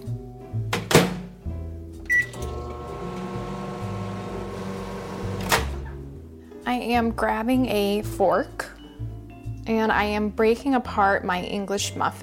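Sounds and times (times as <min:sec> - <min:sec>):
microwave oven running with a steady mechanical hum: 0:02.1 - 0:05.6
speech: 0:06.7 - 0:08.7, 0:09.7 - 0:12.2.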